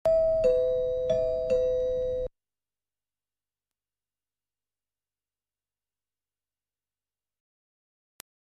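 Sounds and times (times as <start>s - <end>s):
doorbell ringing: 0.1s - 2.3s.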